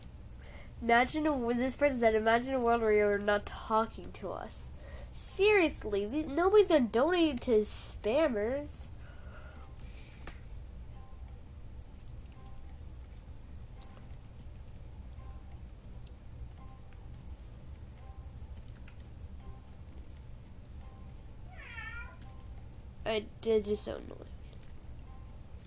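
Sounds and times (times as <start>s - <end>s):
steady low hum: 0.0s - 25.6s
speech: 0.8s - 4.7s, 5.4s - 8.9s, 23.2s - 24.3s
cat meowing: 21.5s - 22.2s.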